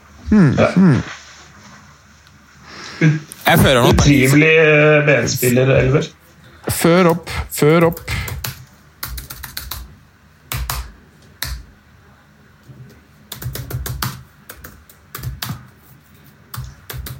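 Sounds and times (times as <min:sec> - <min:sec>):
speech: 0:00.3 - 0:01.2, 0:03.0 - 0:08.1
typing on a computer keyboard: 0:07.9 - 0:09.9, 0:10.5 - 0:11.6, 0:13.3 - 0:15.7, 0:16.5 - 0:17.1.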